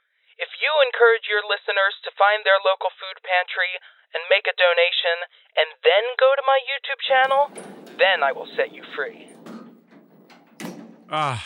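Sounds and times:
speech: 0.4 - 9.3, 11.1 - 11.4
door lock clunk as it comes unlocked: 7.2 - 11.2.

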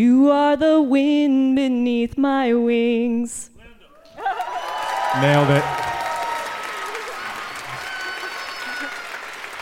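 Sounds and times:
speech: 0.0 - 3.5, 5.2 - 5.8
audience applause: 4.1 - 9.5.

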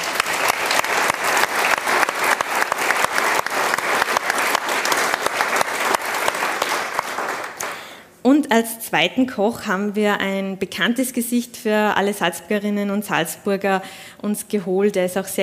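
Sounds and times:
sizeable crowd applauding: 0.0 - 7.9
speech: 8.4 - 15.4.

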